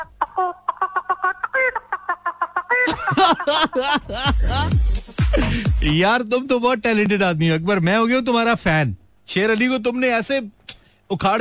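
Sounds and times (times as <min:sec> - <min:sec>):
person imitating chicken clucking and squawking cackles: 0:00.0 - 0:03.0
laughter: 0:02.7 - 0:05.9
speech: 0:03.3 - 0:04.8, 0:05.4 - 0:11.3.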